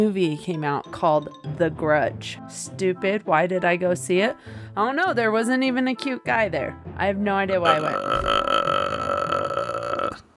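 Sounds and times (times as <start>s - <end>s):
speech: 0.0s - 8.5s
person imitating a ghostly croaking death rattle in the throat: 7.7s - 10.3s.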